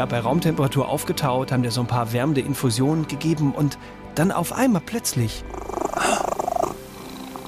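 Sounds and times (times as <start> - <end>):
speech: 0.0 - 5.8
cat purring: 5.2 - 7.4.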